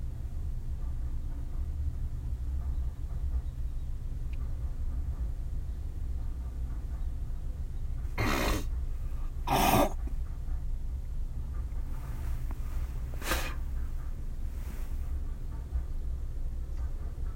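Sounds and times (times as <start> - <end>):
train rolling past with a low rumble: 0.0 - 17.3
sharp burst of hissing noise: 12.1 - 13.8.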